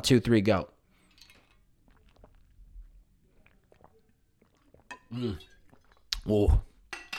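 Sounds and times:
speech: 0:00.0 - 0:00.7, 0:05.1 - 0:05.5, 0:06.2 - 0:06.7
person gulping ice water: 0:00.9 - 0:06.9
ice clinking against a container: 0:01.0 - 0:02.6, 0:03.3 - 0:06.1
wet mouth clicks: 0:01.2 - 0:06.3.

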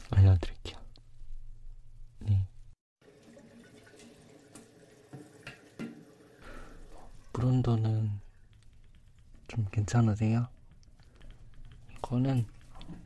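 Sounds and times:
water running from a tap at a sink: 0:03.0 - 0:07.0
speech: 0:07.4 - 0:08.2, 0:09.5 - 0:10.6, 0:12.1 - 0:12.6.

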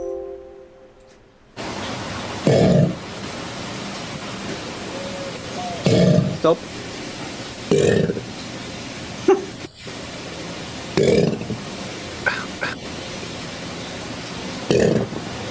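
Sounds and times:
deep burp-like croaks: 0:02.4 - 0:03.0, 0:05.8 - 0:06.6, 0:07.7 - 0:08.3, 0:11.0 - 0:11.6, 0:12.2 - 0:12.8, 0:14.7 - 0:15.2
speech: 0:06.4 - 0:06.8, 0:07.7 - 0:08.2.

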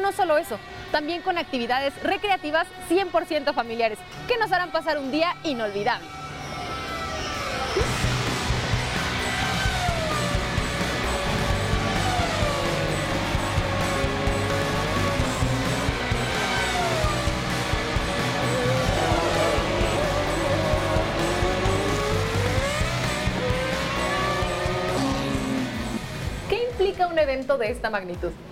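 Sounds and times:
speech: 0:00.1 - 0:06.2, 0:07.7 - 0:08.0, 0:27.2 - 0:28.5
race car engines roaring at a motorsport speed festival in Mexico City: 0:05.6 - 0:26.5.

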